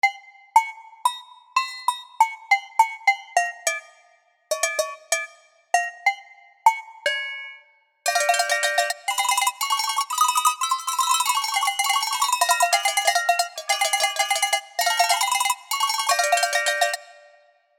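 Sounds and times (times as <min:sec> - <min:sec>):
Alpine folk music: 0:00.0 - 0:17.4
Alpine cowbells ringing: 0:04.5 - 0:06.1, 0:07.1 - 0:17.4.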